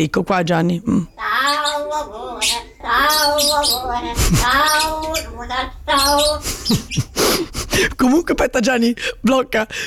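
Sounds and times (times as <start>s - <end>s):
speech: 0.0s - 9.8s
pet budgie chattering and warbling: 1.2s - 7.6s.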